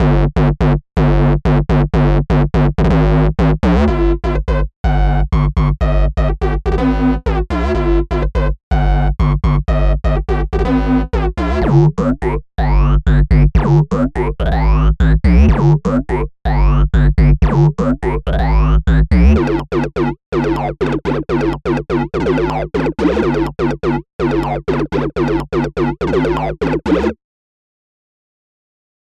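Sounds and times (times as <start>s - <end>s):
big bass: 0.0s - 27.2s.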